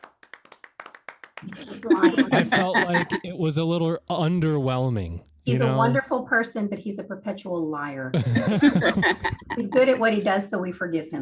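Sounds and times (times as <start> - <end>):
applause of sharp distinct hand claps: 0.0 - 3.4, 8.2 - 9.8
laughter: 1.4 - 6.0, 8.2 - 10.4
speech: 1.4 - 11.2.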